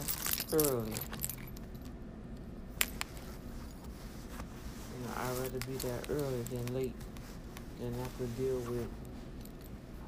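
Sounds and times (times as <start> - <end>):
keys jingling: 0.0 - 2.0, 5.1 - 6.9, 8.7 - 9.9
steady low rumble: 0.0 - 10.0
speech: 0.5 - 1.2, 5.4 - 7.1, 7.8 - 9.1.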